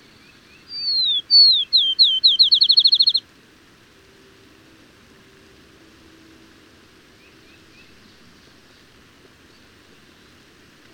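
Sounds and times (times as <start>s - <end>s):
bird song with descending whistles and trill: 0.0s - 3.2s, 7.2s - 10.5s.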